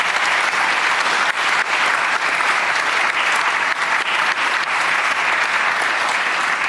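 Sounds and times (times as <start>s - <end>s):
audience applause from a large crowd: 0.0s - 6.6s.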